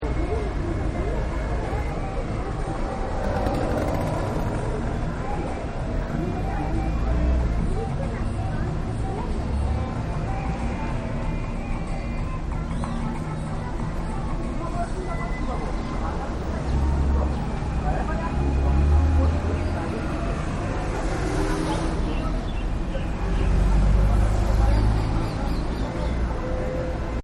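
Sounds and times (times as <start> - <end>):
busy street in India: 0.0 - 27.2.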